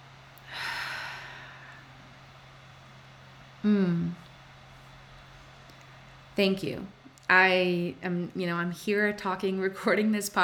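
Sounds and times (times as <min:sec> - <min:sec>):
faint steady hum: 0:00.0 - 0:10.4
louder voiced exhale during a breathing exercise: 0:00.4 - 0:01.8
soft airy inhale during a breathing exercise: 0:00.4 - 0:02.2
speech: 0:03.6 - 0:04.1, 0:06.4 - 0:10.4.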